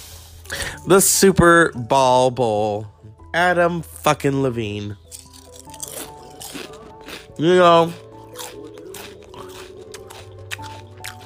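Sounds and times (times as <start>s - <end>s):
speech: 0.5s - 5.2s, 7.4s - 8.0s
crunchy chewing: 5.0s - 11.2s.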